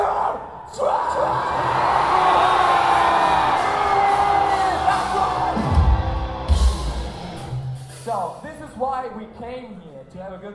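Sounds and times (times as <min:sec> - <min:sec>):
huge concert crowd screaming and yelling: 0:00.0 - 0:08.0.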